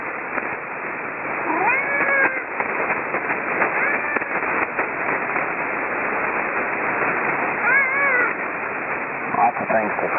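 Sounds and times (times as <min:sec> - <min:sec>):
band-limited hiss: 0:00.0 - 0:10.1
cat meowing: 0:01.4 - 0:02.6, 0:03.6 - 0:04.6, 0:07.6 - 0:08.4.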